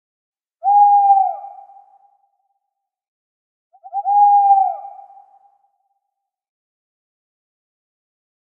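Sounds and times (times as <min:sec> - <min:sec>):
owl hooting: 0:00.6 - 0:02.1, 0:03.8 - 0:05.5.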